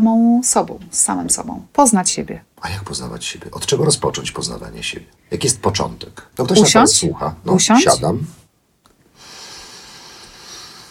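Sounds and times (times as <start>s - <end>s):
speech: 0.0s - 8.4s
short sniffing intake of breath: 9.1s - 10.8s
long steady airy exhale: 9.2s - 10.8s.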